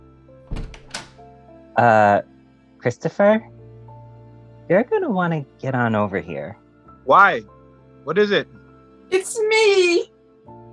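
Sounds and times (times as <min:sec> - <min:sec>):
heavy wooden front door opening: 0:00.4 - 0:01.3
front door latch click: 0:00.5 - 0:01.2
speech: 0:01.8 - 0:03.6, 0:04.7 - 0:10.1.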